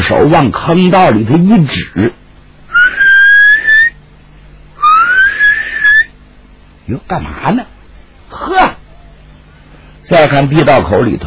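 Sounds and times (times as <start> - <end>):
speech: 0.2 - 2.2, 6.9 - 8.7, 10.1 - 11.2
old Taoist nun mouth whistling while climbing out of a tunnel: 2.7 - 4.0, 4.8 - 6.1.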